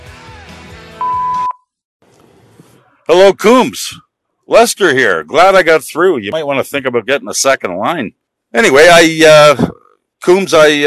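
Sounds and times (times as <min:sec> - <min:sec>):
answering machine beep: 0:01.0 - 0:01.6
speech: 0:03.1 - 0:10.8.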